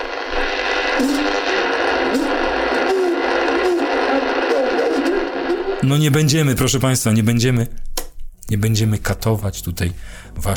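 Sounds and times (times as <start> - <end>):
vintage radio crackling with broadband hiss and static: 0.0 - 6.7
speech: 1.0 - 2.3, 5.8 - 10.5.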